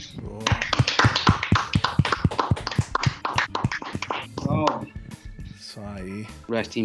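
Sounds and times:
hand clapping applause: 0.0 - 5.0
speech: 6.5 - 6.8.

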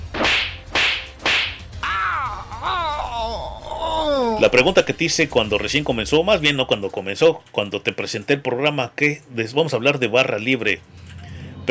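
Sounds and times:
sharp slaps on a frozen device: 0.0 - 1.7
wavering whiny groaning sound: 1.8 - 6.6
speech: 4.4 - 11.1.

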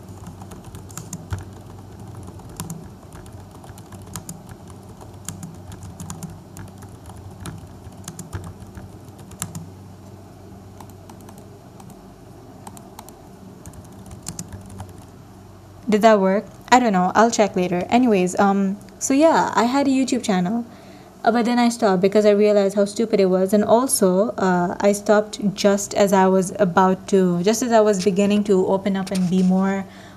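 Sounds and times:
typing on a computer keyboard: 0.0 - 9.7, 10.8 - 12.0, 12.6 - 15.1
low hum: 0.0 - 30.1
speech: 15.9 - 30.1.

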